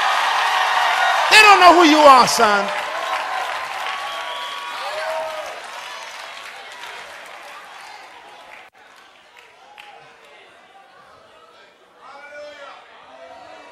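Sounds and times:
audience shouting and cheering: 0.0s - 3.6s
audience applause: 0.0s - 10.1s
speech: 1.4s - 2.8s.

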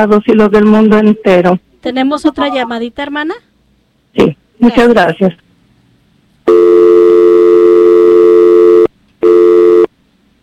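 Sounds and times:
speech: 0.0s - 3.5s, 4.2s - 5.4s
telephone busy tone after a call is cut off: 6.5s - 9.9s.

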